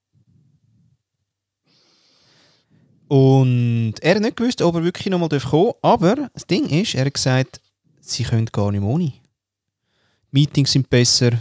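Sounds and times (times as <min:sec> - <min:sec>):
deep breaths: 0:01.6 - 0:03.1, 0:09.8 - 0:10.3
speech: 0:03.1 - 0:09.2, 0:10.3 - 0:11.3.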